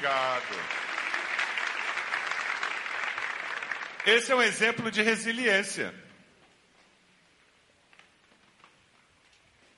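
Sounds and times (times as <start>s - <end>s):
speech: 0.0s - 0.9s, 4.0s - 6.0s
audience applause: 0.0s - 4.6s.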